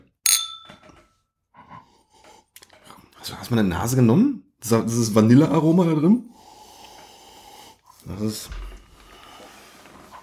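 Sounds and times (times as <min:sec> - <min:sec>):
glasses clinking in a toast: 0:00.2 - 0:01.1
speech: 0:03.2 - 0:06.4, 0:08.1 - 0:08.7.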